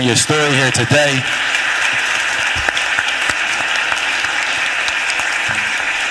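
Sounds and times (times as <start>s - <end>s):
speech: 0.0s - 1.6s
audience applause in council chamber hall: 0.0s - 6.1s.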